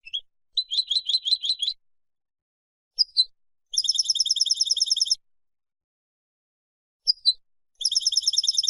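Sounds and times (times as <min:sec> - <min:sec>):
goldfinch song: 0:00.0 - 0:01.8, 0:03.0 - 0:05.2, 0:07.0 - 0:08.6.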